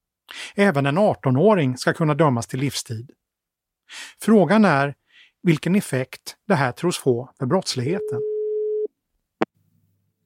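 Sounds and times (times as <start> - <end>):
speech: 0.6 - 3.2, 3.9 - 8.3
telephone ringing tone: 7.9 - 8.9.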